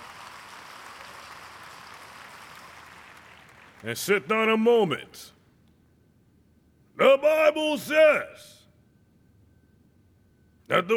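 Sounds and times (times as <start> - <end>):
audience applauding: 0.0 - 4.3
speech: 3.8 - 5.4, 7.0 - 8.6, 10.7 - 10.9.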